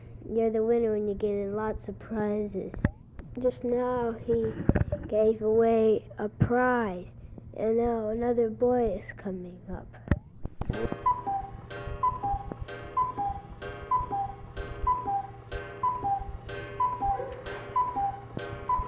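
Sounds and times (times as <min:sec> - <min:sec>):
faint hum: 0:00.0 - 0:18.8
speech: 0:00.3 - 0:10.1
soft mechanical ticking of a cuckoo clock: 0:10.1 - 0:18.8
cuckoo clock calling its two-note cuckoo: 0:10.8 - 0:18.8.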